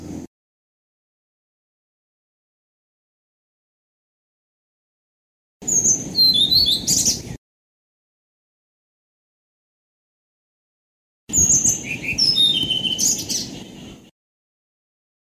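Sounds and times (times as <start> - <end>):
blue-throated flycatcher song: 5.6 - 7.4, 11.3 - 14.1.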